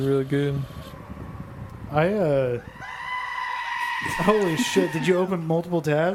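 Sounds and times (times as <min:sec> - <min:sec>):
speech: 0:00.0 - 0:01.0, 0:01.9 - 0:02.9, 0:04.0 - 0:06.1
goat screaming and bleating: 0:02.6 - 0:05.6.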